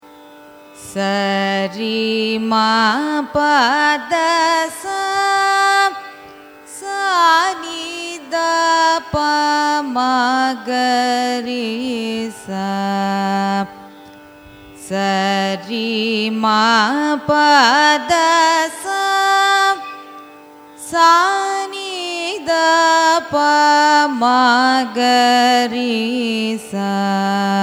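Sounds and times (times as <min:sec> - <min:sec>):
Carnatic music raga ascending and descending scale: 0:00.0 - 0:27.6.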